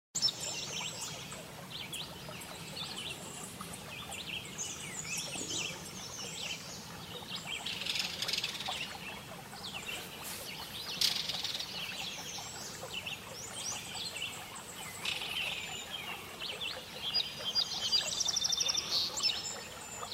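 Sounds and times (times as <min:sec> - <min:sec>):
birds chirping and twittering by a lake and forest: 0:00.2 - 0:20.1
steady background noise: 0:00.2 - 0:20.1.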